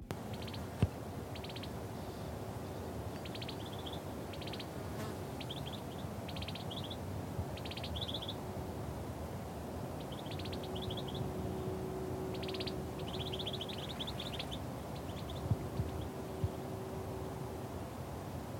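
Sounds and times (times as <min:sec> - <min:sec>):
faint low hum: 0:00.0 - 0:18.5
outdoor hiss: 0:00.0 - 0:18.5
two birds chirping and trilling: 0:03.2 - 0:04.8, 0:05.4 - 0:07.0, 0:07.6 - 0:08.4, 0:10.0 - 0:11.4, 0:12.3 - 0:16.1.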